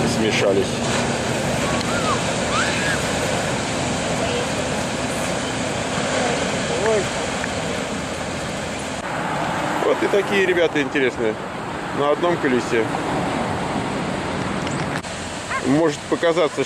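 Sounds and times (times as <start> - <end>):
surf washing on a shore of cold water: 0.0 - 16.6
speech: 0.2 - 1.0, 10.0 - 13.2, 15.6 - 16.6
faint voices or cries: 1.6 - 3.2.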